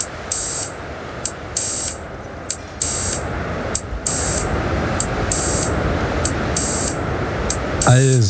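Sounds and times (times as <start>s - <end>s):
synthesizer filter noise from small sound devices: 0.0s - 8.2s
speech: 7.9s - 8.2s.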